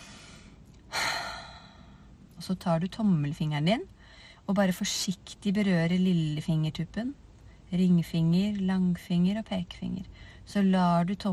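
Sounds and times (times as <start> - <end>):
slow deep breath in through the nose and out through the mouth: 0.0 - 2.1
speech: 2.4 - 11.3.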